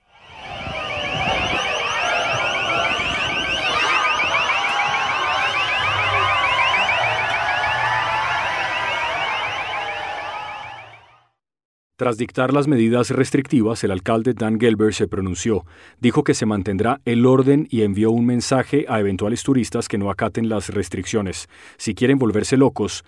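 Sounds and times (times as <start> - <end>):
street noise: 0.0 - 11.0
siren wailing with a pulsing warble during street clashes with police: 0.0 - 11.3
commotion: 0.2 - 9.2
speech: 12.0 - 23.0.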